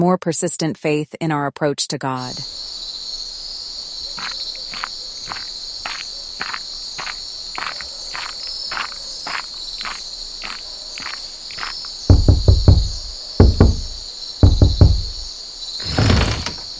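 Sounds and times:
speech: 0.0 - 2.8
chorus of crickets chirping at night: 2.3 - 16.7
faint tapping: 11.0 - 15.3
loud knocking on a door at night: 12.1 - 16.6.

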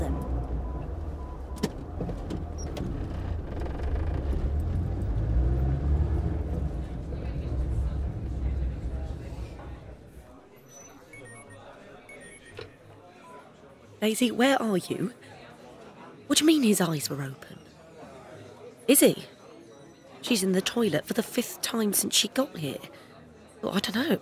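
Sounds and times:
car engine starting and driving off: 0.0 - 10.3
speech: 14.0 - 15.2, 16.3 - 17.6, 18.9 - 19.3, 20.3 - 24.1.

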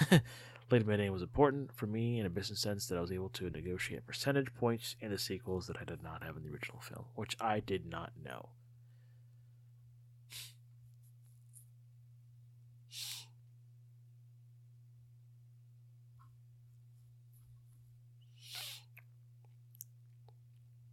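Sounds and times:
steady low electrical hum: 0.0 - 20.9
speech: 0.1 - 8.6
sniffling: 10.3 - 10.6, 12.9 - 13.4, 18.3 - 19.0.

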